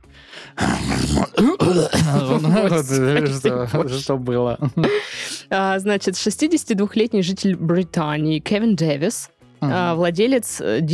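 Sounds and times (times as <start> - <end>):
person imitating a cough: 0.8 - 2.6
speech: 1.1 - 10.9
laughter: 1.9 - 5.1.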